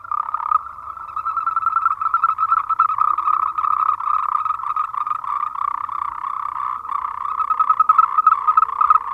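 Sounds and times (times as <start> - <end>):
Moltrecht's green treefrog Rhacophorus moltrechti croaking: 0.0 - 9.1.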